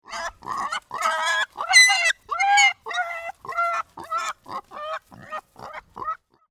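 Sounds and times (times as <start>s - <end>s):
pig squealing: 0.0s - 6.2s.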